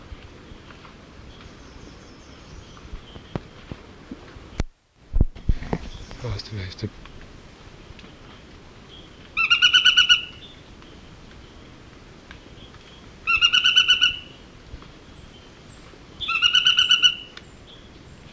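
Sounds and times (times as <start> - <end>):
speech: 6.2 - 7.1
Narino tapaculo Scytalopus vicinior rattling calls: 9.3 - 10.5, 13.2 - 14.4, 16.2 - 17.4.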